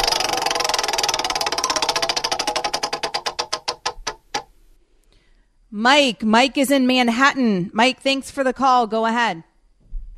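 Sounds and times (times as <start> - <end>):
prize wheel spinning and ticking: 0.0 - 4.5
speech: 5.7 - 9.5.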